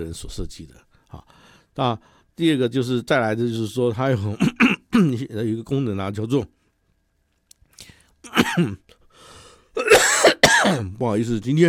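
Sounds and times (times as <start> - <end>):
speech: 0.0 - 6.6, 7.8 - 8.9, 10.6 - 11.6
soft breath: 0.9 - 2.3, 9.1 - 9.7
person with a cold coughing: 4.4 - 5.1, 8.3 - 8.8, 9.8 - 10.9.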